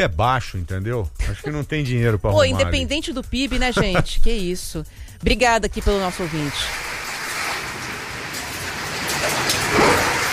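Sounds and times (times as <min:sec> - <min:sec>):
speech: 0:00.0 - 0:06.9
laughter: 0:01.2 - 0:04.4
rain falling steadily over a city: 0:06.2 - 0:10.3.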